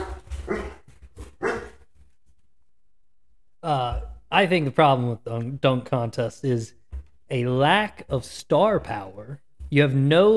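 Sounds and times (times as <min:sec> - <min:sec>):
short soft dog yips: 0:00.0 - 0:00.8, 0:01.4 - 0:01.8
dogs barking: 0:00.0 - 0:01.8
speech: 0:03.6 - 0:10.3.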